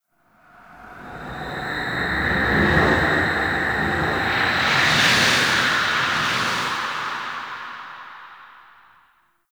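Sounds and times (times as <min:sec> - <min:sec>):
exterior wind gusts ambience: 0:00.4 - 0:09.2.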